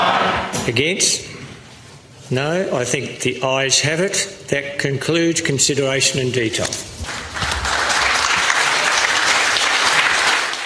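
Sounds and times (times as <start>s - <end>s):
speech: 0.7s - 1.4s, 2.3s - 7.5s
room full of people applauding in parliament: 7.0s - 10.6s.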